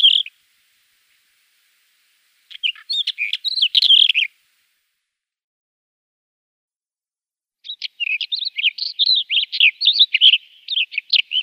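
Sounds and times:
black wheatear singing: 0.0 - 0.4, 2.5 - 4.4, 7.6 - 11.4.

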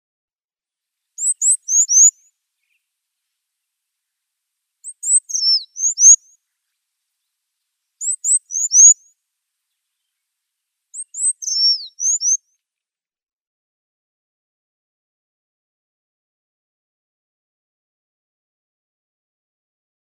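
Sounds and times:
Red-cheeked Cordonbleu song: 1.0 - 12.9.

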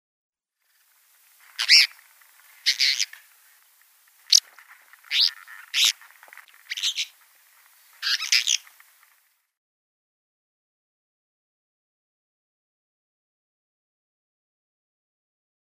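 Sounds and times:
Rock Martin calling: 1.5 - 2.0, 2.6 - 3.2, 4.3 - 7.2, 7.8 - 8.8.

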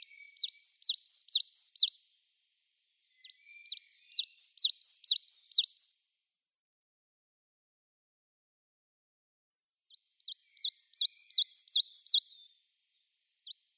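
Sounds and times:
Coal Tit song with high ringing see-saw syllables: 0.0 - 2.1, 3.1 - 6.0, 9.8 - 13.7.

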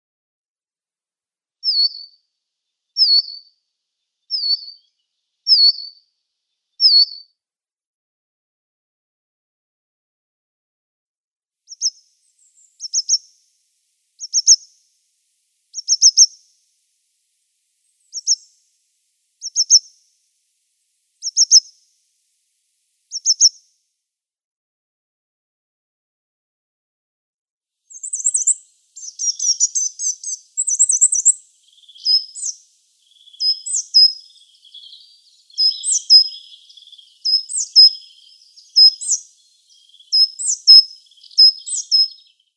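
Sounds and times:
Coal Tit calls: 1.6 - 2.1, 3.0 - 3.4, 4.3 - 4.9, 5.5 - 6.0, 6.8 - 7.2, 11.7 - 13.4, 14.2 - 14.8, 15.7 - 16.5, 17.9 - 18.6, 19.3 - 20.1, 21.2 - 21.9, 23.1 - 23.7, 27.9 - 42.5.

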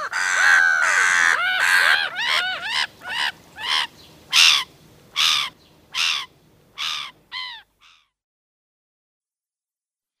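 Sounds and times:
black-headed gull calling: 0.0 - 8.1.

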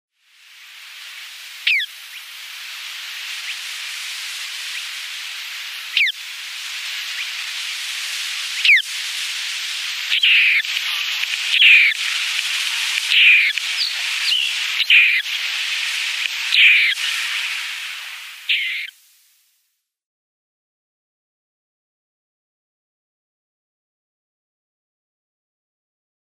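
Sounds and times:
Spotted Crake downy young calling: 1.6 - 2.3, 3.2 - 18.9.

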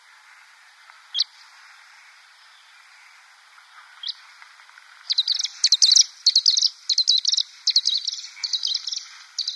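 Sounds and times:
pied kingfisher calling: 5.1 - 9.5.

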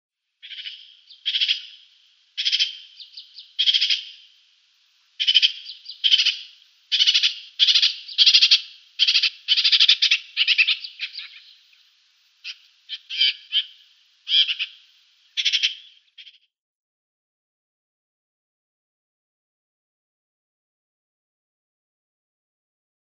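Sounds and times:
Eurasian Magpie mauritanica nestling: 0.4 - 4.3, 5.2 - 11.7, 12.4 - 16.4.

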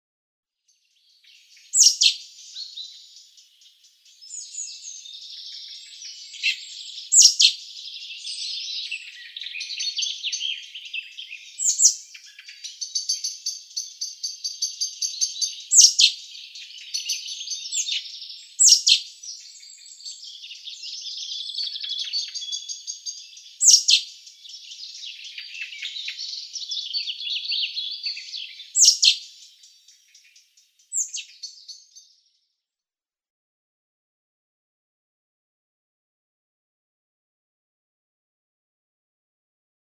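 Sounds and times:
Eurasian Blackbird nestlings: 1.3 - 32.0.

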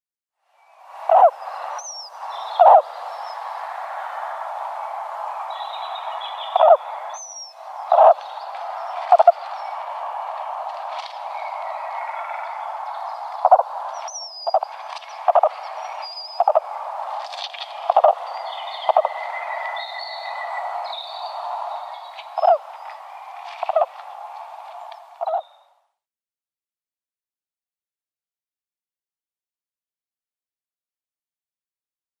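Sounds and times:
female Eurasian woodcock calls: 1.0 - 3.6, 5.4 - 25.6.

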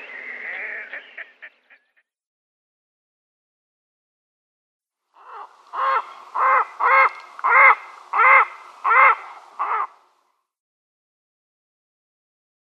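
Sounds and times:
red-necked grebe chattering in rapid clicking notes: 5.2 - 9.9.

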